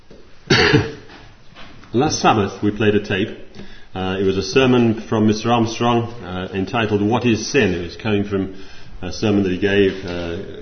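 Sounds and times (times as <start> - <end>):
person coughing: 0.5 - 1.1
speech: 0.6 - 0.9, 1.9 - 10.6.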